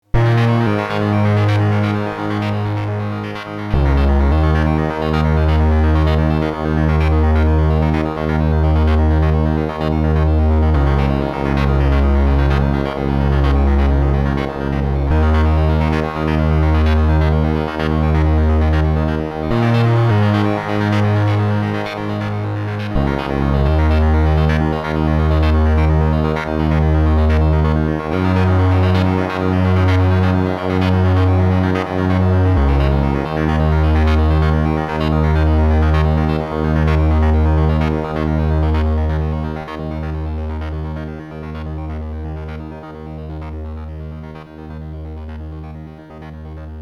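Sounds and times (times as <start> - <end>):
Wavestation synthesizer: 0.0 - 46.7.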